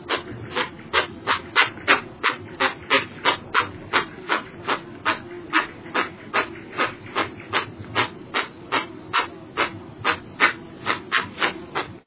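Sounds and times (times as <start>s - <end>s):
jacupemba guan calling: 0.0s - 12.0s.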